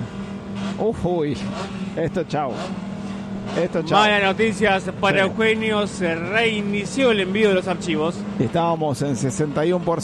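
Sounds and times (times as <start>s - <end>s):
race cars rumbling onto the track: 0.0s - 10.0s
speech: 0.8s - 10.0s.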